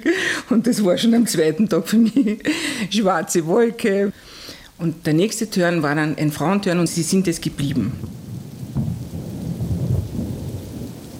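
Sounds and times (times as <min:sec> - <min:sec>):
steady rain during a thunderstorm over a bay: 0:00.0 - 0:11.1
speech: 0:00.5 - 0:08.2
deep thunder rumbling during a thunderstorm over a bay: 0:07.0 - 0:11.1.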